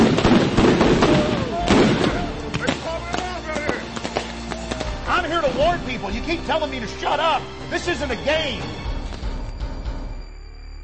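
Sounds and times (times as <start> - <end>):
rubber bullets being fired on a street: 0.0 - 5.0
people shouting: 0.6 - 5.5
speech: 6.3 - 8.8.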